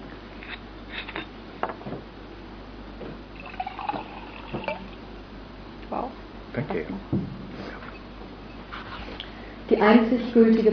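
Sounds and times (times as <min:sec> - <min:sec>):
water pouring into a glass: 0:03.4 - 0:05.0
speech: 0:06.6 - 0:07.2, 0:09.8 - 0:10.7.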